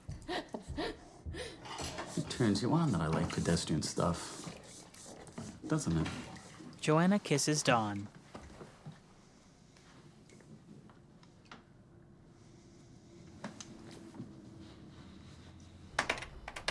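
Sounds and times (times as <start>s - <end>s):
speech: 2.4s - 4.4s, 5.7s - 8.2s
typing on a computer keyboard: 16.0s - 16.6s.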